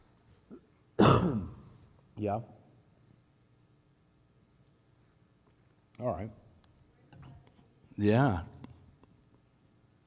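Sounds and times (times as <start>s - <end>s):
person clearing throat: 0.5s - 1.7s
speech: 1.1s - 1.6s, 2.2s - 2.6s, 6.0s - 6.4s, 8.0s - 8.5s.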